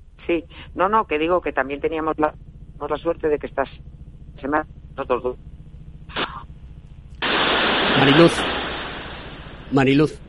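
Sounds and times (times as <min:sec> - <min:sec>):
broadband static hiss on a phone line: 0:00.0 - 0:10.2
speech: 0:00.3 - 0:05.5, 0:08.0 - 0:08.6, 0:09.7 - 0:10.2
crackling burst on a phone line: 0:07.2 - 0:10.0.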